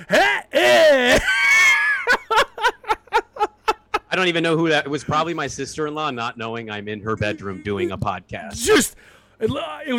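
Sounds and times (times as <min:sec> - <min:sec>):
person imitating a startled gasp with a sharp high-pitched intake: 0:00.0 - 0:01.2
speech: 0:00.0 - 0:01.3, 0:04.2 - 0:09.9
quick evenly spaced bursts of laughter: 0:00.0 - 0:04.1.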